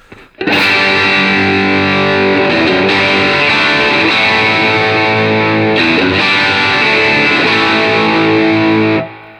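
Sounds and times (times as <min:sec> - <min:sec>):
electric guitar chord through reverb pedal on stage: 0:00.5 - 0:09.3.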